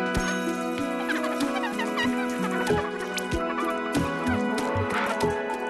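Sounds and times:
experimental electronic percussion music: 0.1s - 5.6s.

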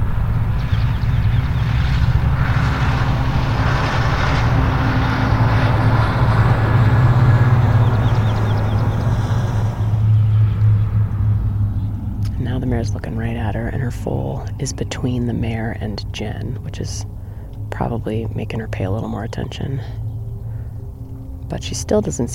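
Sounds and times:
large truck engine rumbling past on the way to the dump: 0.0s - 22.3s
speech: 14.6s - 17.1s, 17.8s - 20.0s, 21.5s - 22.3s.

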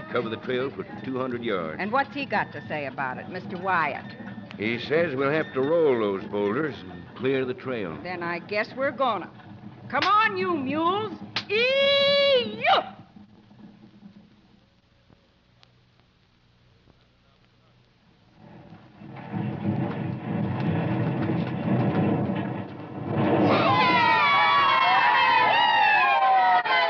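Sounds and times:
speech: 0.1s - 13.0s
rumbling commotion: 0.8s - 14.8s, 18.3s - 25.8s
group of men whooping cheers and hollers: 23.4s - 26.8s.

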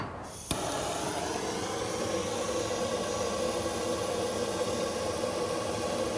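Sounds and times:
torch flame hissing while lighting wood pellets in a stainless steel smoker tube: 0.0s - 6.1s.

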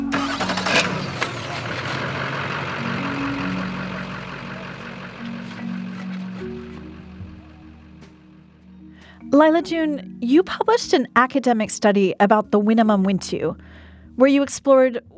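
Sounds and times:
loaded truck engines starting, idling and pulling away after dark: 0.0s - 8.8s
speech: 9.4s - 15.1s.

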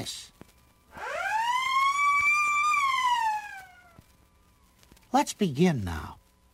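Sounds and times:
speech: 0.0s - 0.3s, 5.1s - 6.2s
police siren wailing: 0.7s - 4.8s.

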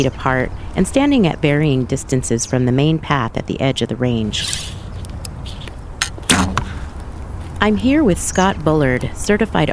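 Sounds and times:
speech: 0.0s - 4.8s, 7.6s - 9.7s
quiet outdoor ambience at an archery range: 0.0s - 9.7s
arrow loosed with a brief swish at an archery range: 4.4s - 6.9s
arrow landing in an archery target with a sharp solid thwack: 6.0s - 6.8s.

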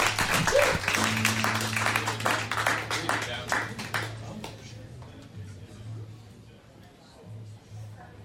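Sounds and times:
audience applause: 0.0s - 4.2s.

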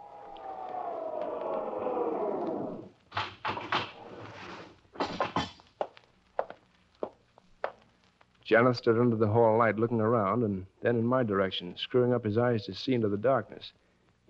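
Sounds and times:
elevator hum and whine sliding down in pitch as it stops: 0.0s - 2.9s
scattered knocks and steps: 3.0s - 8.4s
speech: 8.5s - 14.2s.

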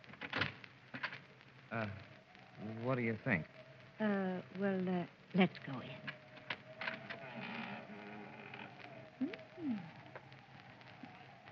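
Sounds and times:
speech: 1.7s - 6.1s
door creaking as it swings: 6.0s - 9.2s.

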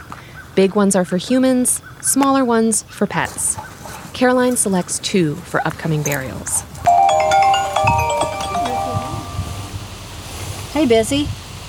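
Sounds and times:
speech: 0.6s - 6.7s, 10.8s - 11.4s
mobile phone ringing with a melodic electronic tone in a burial sanctuary office: 6.9s - 9.8s.

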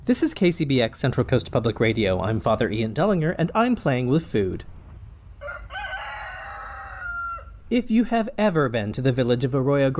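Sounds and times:
speech: 0.1s - 4.8s, 7.7s - 9.9s
low rumble: 0.4s - 9.9s
rooster crowing: 5.4s - 7.6s.

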